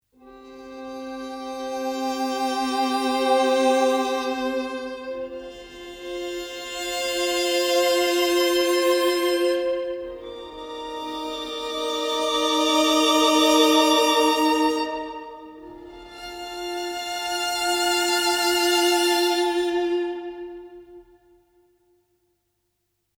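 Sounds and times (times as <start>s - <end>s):
violin playing expressively: 0.2s - 21.5s.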